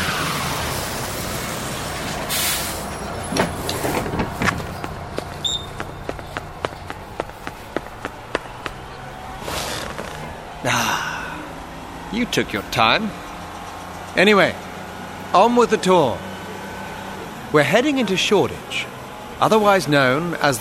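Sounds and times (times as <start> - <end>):
double-decker bus engine idling with a low rumble: 0.2 - 20.6
double-decker bus air brakes hissing: 2.0 - 4.1
speech: 12.2 - 13.3, 14.1 - 14.7, 15.3 - 16.3, 17.5 - 20.6.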